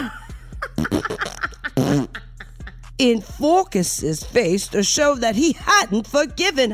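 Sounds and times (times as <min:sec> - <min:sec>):
laughter: 0:00.0 - 0:02.9
sputtering fart noises: 0:00.7 - 0:02.4
speech: 0:03.0 - 0:06.7.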